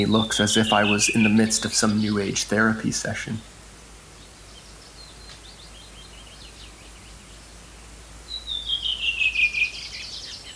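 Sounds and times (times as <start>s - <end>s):
speech: 0.0s - 3.5s
faint hiss: 0.0s - 10.5s
redwing and willow wren song: 0.0s - 10.5s.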